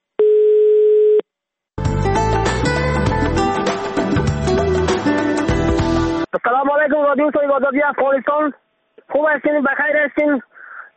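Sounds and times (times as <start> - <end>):
telephone line tone: 0.2 - 1.2
loud instrumental music: 1.8 - 6.3
speech: 6.3 - 10.5.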